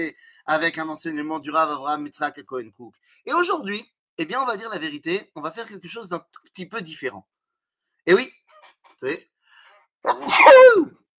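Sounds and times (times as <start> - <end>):
speech: 0.0 - 7.4, 8.0 - 9.3, 10.0 - 11.0
person sneezing: 10.1 - 10.9.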